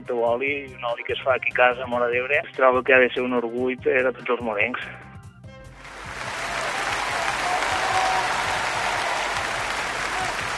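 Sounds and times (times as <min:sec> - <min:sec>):
speech: 0:00.0 - 0:05.1
audience applause: 0:05.8 - 0:10.5.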